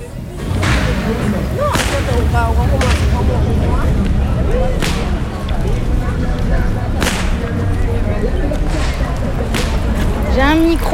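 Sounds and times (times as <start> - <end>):
crowd noise and voices: 0.0 - 10.9
carnival whip cracking: 1.7 - 2.2, 4.8 - 5.2, 7.0 - 7.5, 8.7 - 10.1.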